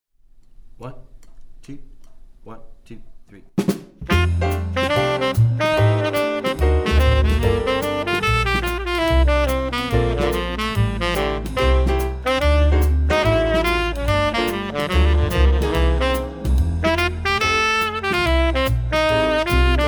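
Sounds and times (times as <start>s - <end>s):
swing etude on tenor sax: 4.0s - 19.8s.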